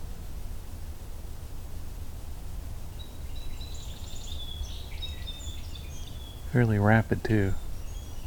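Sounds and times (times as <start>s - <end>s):
song sparrow singing repetitive song: 2.9s - 8.2s
speech: 6.5s - 7.6s.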